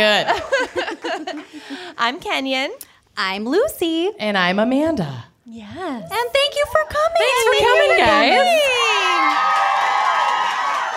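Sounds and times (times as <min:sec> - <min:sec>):
speech: 0:00.0 - 0:09.7
live crowd cheering and whooping: 0:07.2 - 0:10.9.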